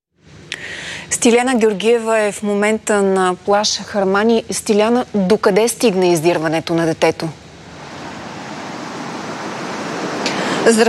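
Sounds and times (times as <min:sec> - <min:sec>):
speech: 0:01.1 - 0:07.4, 0:10.6 - 0:10.8
stormy rough sea surf pounding the beach at Harmani: 0:07.6 - 0:10.8.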